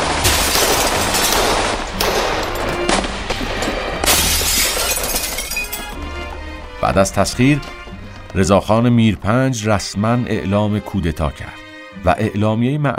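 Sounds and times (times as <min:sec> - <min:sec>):
glass and windows shattering in Tehran barracks attack: 0:00.0 - 0:06.0
speech: 0:06.9 - 0:12.9.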